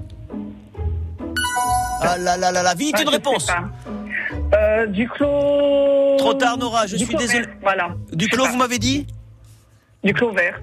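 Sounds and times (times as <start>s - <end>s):
quiz-show time-up gong: 1.4s - 2.4s
speech: 2.0s - 4.0s, 4.6s - 9.2s, 10.0s - 10.6s.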